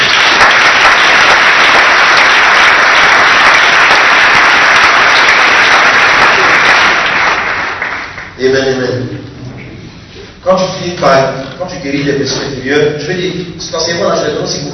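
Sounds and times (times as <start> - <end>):
congregation applauding at a church service: 0.0 - 8.4
speech: 10.5 - 14.7.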